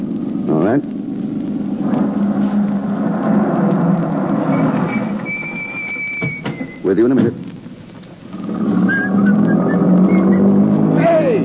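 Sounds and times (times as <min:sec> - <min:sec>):
speech: 0:00.7 - 0:01.0, 0:06.9 - 0:07.4
car engine starting and rumbling as the car pulls away: 0:01.6 - 0:06.6, 0:08.2 - 0:11.4
thin whistling tones: 0:04.5 - 0:07.0, 0:08.9 - 0:10.6.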